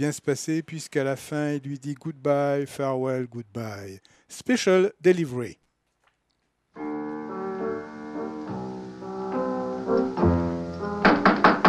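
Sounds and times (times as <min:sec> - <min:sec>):
speech: 0:00.0 - 0:05.6
held musical chord: 0:06.8 - 0:10.4
sharp knocks on a door: 0:11.0 - 0:11.6.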